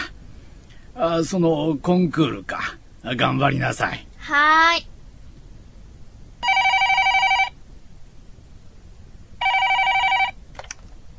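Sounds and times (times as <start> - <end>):
speech: 1.0 - 4.9
telephone ringing: 6.4 - 7.6, 9.4 - 10.4.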